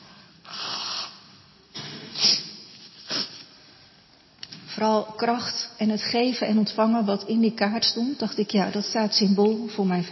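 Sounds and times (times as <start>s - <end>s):
person blowing nose: 0.4s - 3.5s
speech: 4.8s - 10.1s.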